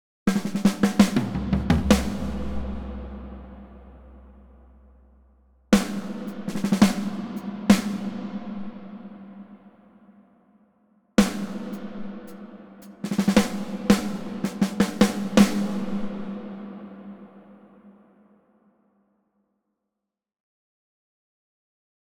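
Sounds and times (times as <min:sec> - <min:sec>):
drums in a cathedral in Kyiv: 0:00.2 - 0:10.2, 0:11.2 - 0:18.0.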